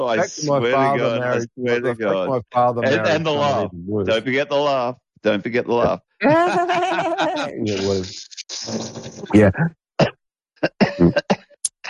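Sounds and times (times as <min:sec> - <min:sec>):
laughter: 0:00.0 - 0:04.3, 0:05.8 - 0:08.1, 0:10.6 - 0:11.4
speech: 0:00.0 - 0:11.2
person coughing: 0:10.0 - 0:11.4.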